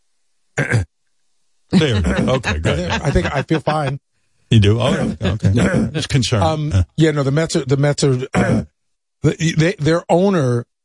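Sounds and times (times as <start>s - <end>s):
person clearing phlegm from throat: 0.6s - 0.9s, 1.8s - 3.4s, 4.8s - 6.2s, 8.2s - 8.7s
speech: 0.6s - 0.9s, 1.7s - 10.7s
laughter: 1.8s - 4.0s, 4.6s - 6.9s.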